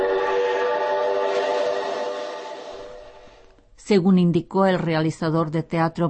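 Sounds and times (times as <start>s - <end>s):
loud sustained train whistle blowing: 0.0s - 3.5s
speech: 3.9s - 6.0s.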